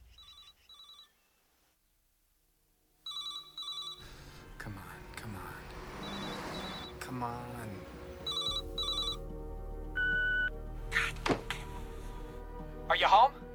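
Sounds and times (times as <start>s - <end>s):
city noise: 0.0s - 13.5s
telephone ringing on the caller's end through the caller's line: 0.1s - 1.3s, 3.0s - 4.3s, 5.9s - 7.0s, 8.2s - 9.3s
speech: 7.1s - 8.0s, 13.0s - 13.4s.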